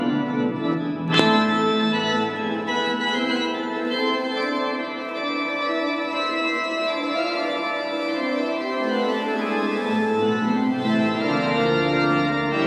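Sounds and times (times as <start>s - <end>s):
organ: 0.0s - 12.6s.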